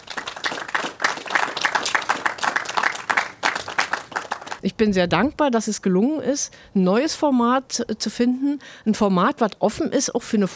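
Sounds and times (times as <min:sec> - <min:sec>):
crowd applauding at a volunteer-run technical museum: 0:00.0 - 0:04.6
speech: 0:04.7 - 0:10.5.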